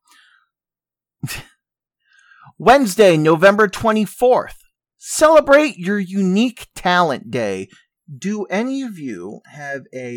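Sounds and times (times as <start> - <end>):
person sneezing: 1.2 - 1.6
speech: 2.6 - 10.1.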